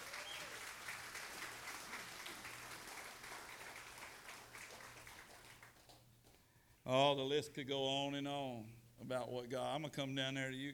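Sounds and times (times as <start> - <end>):
audience applause: 0.0 - 6.0
speech: 6.9 - 10.7.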